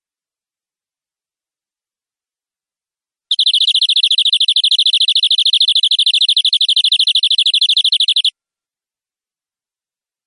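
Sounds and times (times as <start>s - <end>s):
canary song trill: 3.3s - 8.4s.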